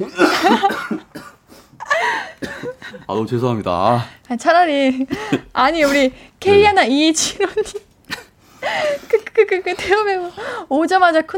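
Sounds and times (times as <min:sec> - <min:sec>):
loud harsh coughing: 0:00.0 - 0:01.4, 0:02.0 - 0:02.8
speech: 0:03.1 - 0:07.8, 0:08.6 - 0:11.3
raspy throat sounds: 0:06.4 - 0:06.8.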